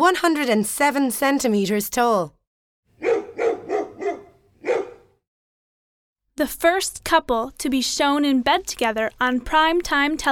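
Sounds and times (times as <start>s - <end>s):
speech: 0.0s - 2.4s, 6.4s - 10.3s
dog barking: 3.0s - 5.2s.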